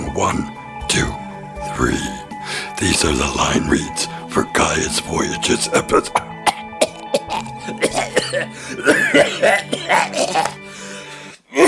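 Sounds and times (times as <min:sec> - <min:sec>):
speech: 0:00.2 - 0:01.2, 0:01.8 - 0:06.3
man clearing his throat: 0:05.9 - 0:10.6
man coughing: 0:05.9 - 0:10.7.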